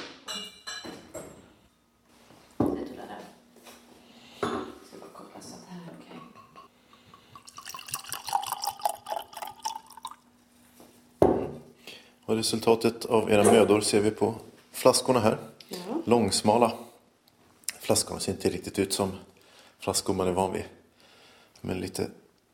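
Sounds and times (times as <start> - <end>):
glass clinking: 0.3 - 1.3, 6.1 - 10.2
rosé wine being poured into a glass: 6.9 - 10.3
speech: 12.3 - 16.8, 17.9 - 20.8, 21.6 - 22.2.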